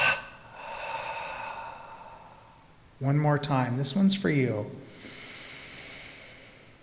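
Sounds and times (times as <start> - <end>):
deep breath released during a guided breathing exercise: 0.0 - 2.7, 4.9 - 6.8
speech: 3.0 - 4.9.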